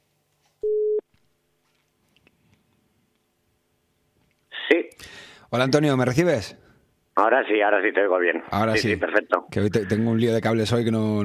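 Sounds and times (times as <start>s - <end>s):
telephone call tone beep while a call is placed: 0.6s - 1.0s
speech: 4.7s - 6.6s, 7.2s - 11.2s.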